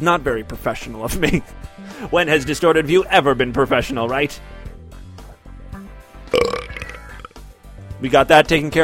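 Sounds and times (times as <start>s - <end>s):
speech: 0.0s - 4.6s, 6.3s - 6.6s, 8.0s - 8.8s
person burping: 6.3s - 7.4s.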